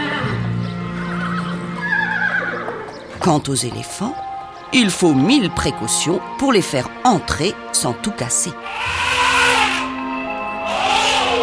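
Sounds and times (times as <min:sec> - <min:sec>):
horse neighing and whinnying: 0:00.0 - 0:03.0, 0:08.6 - 0:10.0, 0:10.6 - 0:11.4
speech: 0:03.2 - 0:09.2.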